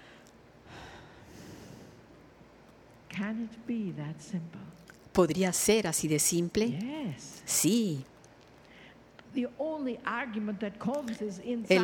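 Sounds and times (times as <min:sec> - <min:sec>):
person taking a long airy inhale: 0:00.0 - 0:02.1
speech: 0:03.2 - 0:08.1, 0:09.3 - 0:11.8.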